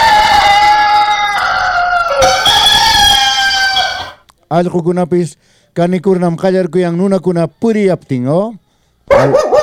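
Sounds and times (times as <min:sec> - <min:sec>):
rooster crowing: 0:00.0 - 0:04.2
speech: 0:04.5 - 0:09.5.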